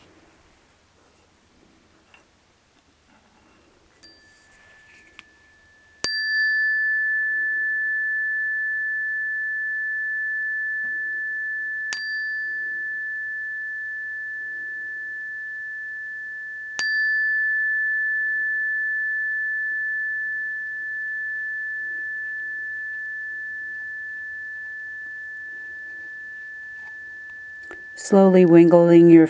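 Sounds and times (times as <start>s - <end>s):
meditation bell strikes with long sustained ring: 4.1s - 15.8s, 16.8s - 28.8s
speech: 28.0s - 29.2s.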